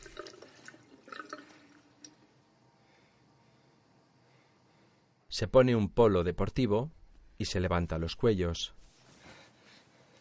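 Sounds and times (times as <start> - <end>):
water trickling and splashing as a person washes scratches in a bathroom: 0.0 - 2.1
speech: 5.4 - 8.8.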